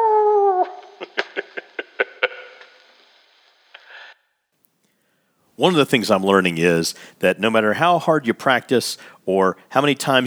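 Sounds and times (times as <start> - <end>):
dog howling: 0.0 - 1.0
speech: 5.6 - 10.2.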